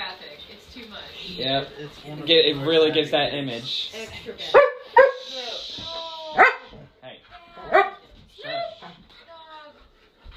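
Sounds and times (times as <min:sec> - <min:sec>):
speech: 0:00.8 - 0:04.7
dog barking: 0:04.5 - 0:05.3, 0:06.4 - 0:06.8, 0:07.6 - 0:08.1.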